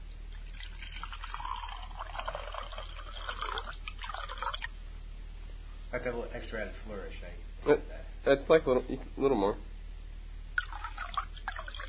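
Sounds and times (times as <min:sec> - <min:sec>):
wine pouring into a glass: 0:00.3 - 0:04.7, 0:10.6 - 0:11.8
speech: 0:06.0 - 0:09.7.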